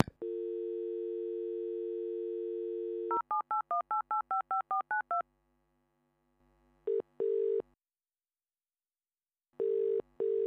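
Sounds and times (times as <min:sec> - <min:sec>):
telephone dial tone: 0:00.2 - 0:05.2, 0:09.6 - 0:10.4.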